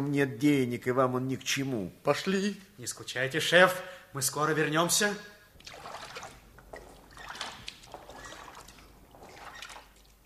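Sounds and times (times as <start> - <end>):
speech: 0.0 - 5.8
rhythmic oar splashes and swishes: 5.6 - 10.2
rowboat pushing off from the shore: 5.6 - 10.2.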